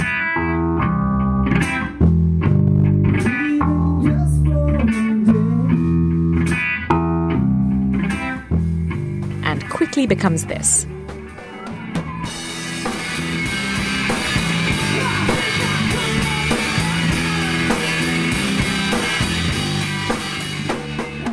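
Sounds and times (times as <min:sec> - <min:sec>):
fast loud rock band playing a ballad cover: 0:00.0 - 0:04.0, 0:04.8 - 0:21.3
dense wall of distorted guitar: 0:00.0 - 0:21.3
speech: 0:10.0 - 0:11.0
screamed yelling vocals: 0:14.6 - 0:17.9.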